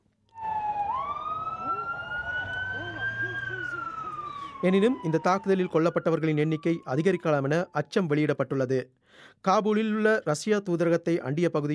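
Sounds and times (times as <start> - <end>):
ambulance siren wailing in Kabul: 0.3 - 8.3
low rumble of traffic in Kabul: 0.4 - 7.4
speech: 4.6 - 11.7.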